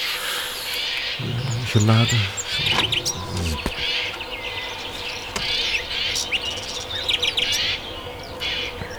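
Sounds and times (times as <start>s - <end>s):
garden birds chirping and singing: 0.0s - 8.9s
speech: 1.2s - 2.9s.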